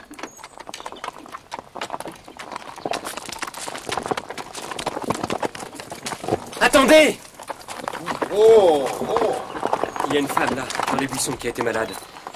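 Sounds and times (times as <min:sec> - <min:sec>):
horse hooves clip-clopping as a horse-drawn cart passes: 0:00.0 - 0:12.3
speech: 0:06.8 - 0:07.2, 0:08.3 - 0:09.3, 0:10.1 - 0:12.1.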